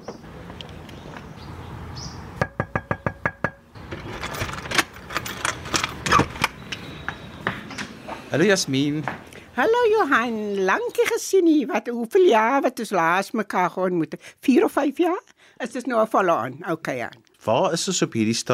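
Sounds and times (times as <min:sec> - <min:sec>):
sharp knocks on an apartment door in District Six: 0:02.4 - 0:03.6
clattering: 0:03.8 - 0:06.9
speech: 0:08.3 - 0:18.5.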